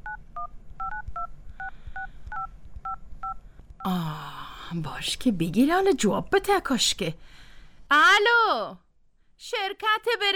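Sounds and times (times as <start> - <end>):
keypad tones of a phone number being dialed on a mobile phone: 0.0 - 3.4
speech: 3.9 - 8.8, 9.4 - 10.3.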